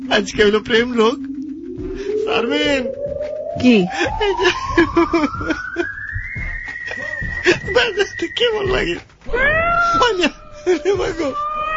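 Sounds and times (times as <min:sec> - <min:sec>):
speech: 0:00.1 - 0:03.0, 0:03.6 - 0:05.9, 0:07.6 - 0:11.5
cat meowing: 0:09.3 - 0:11.7.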